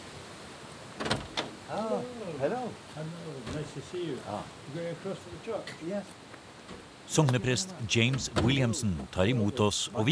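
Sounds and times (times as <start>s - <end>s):
door being unlatched and pushed open: 1.0s - 1.6s, 8.0s - 8.7s
speech: 1.7s - 10.0s.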